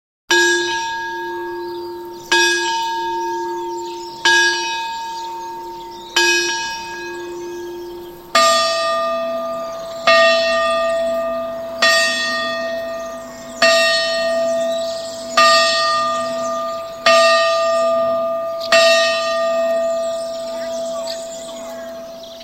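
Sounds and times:
village church bell ringing: 0.3 - 22.4.

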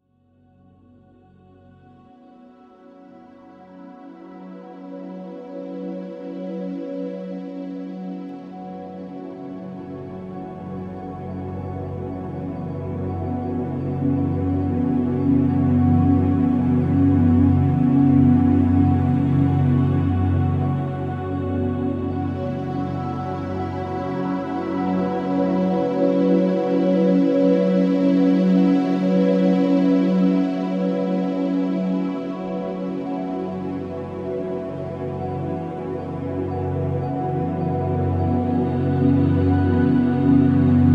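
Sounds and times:
ambient and cinematic soundscape: 0.4 - 40.9.

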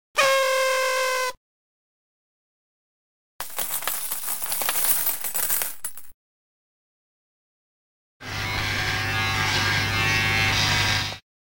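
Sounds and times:
party horn: 0.1 - 1.4
coins: 3.4 - 6.2
shaver: 8.2 - 11.2.

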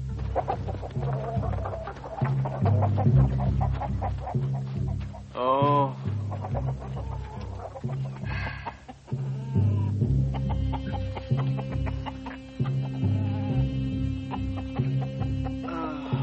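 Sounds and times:
several chickens clucking and squawking in a barnyard: 0.1 - 5.3, 6.0 - 16.2
person exclaiming: 5.4 - 6.0.

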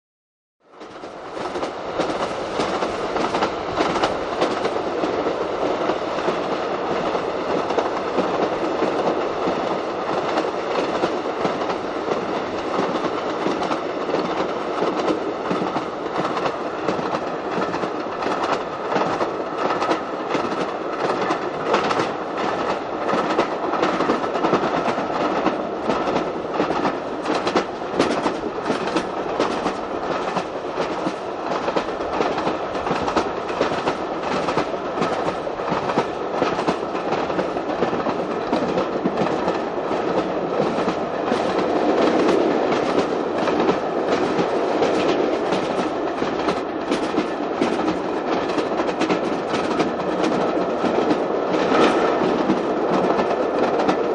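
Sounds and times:
diesel train travelling, heard from the interior: 0.7 - 54.1.

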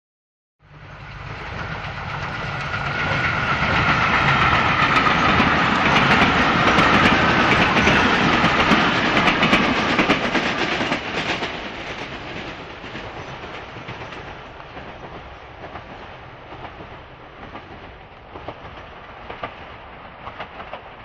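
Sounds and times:
electric train approaching and passing fast: 0.6 - 21.0.

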